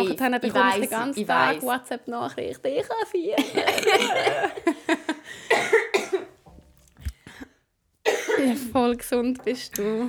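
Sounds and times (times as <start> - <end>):
speech: 0.1 - 5.8, 8.4 - 10.0
laughter: 3.3 - 5.3
person coughing: 3.5 - 4.6, 5.5 - 6.4, 8.1 - 8.6.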